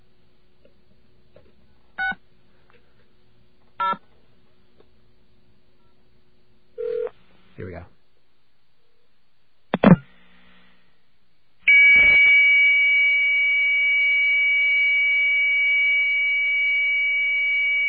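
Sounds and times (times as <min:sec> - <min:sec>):
dial-up modem connecting with handshake tones: 0:11.7 - 0:17.8.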